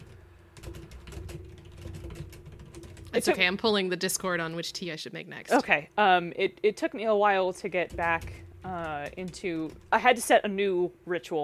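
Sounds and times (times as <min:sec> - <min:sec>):
typing on a computer keyboard: 0:00.0 - 0:03.6, 0:07.6 - 0:10.3
speech: 0:03.2 - 0:11.4.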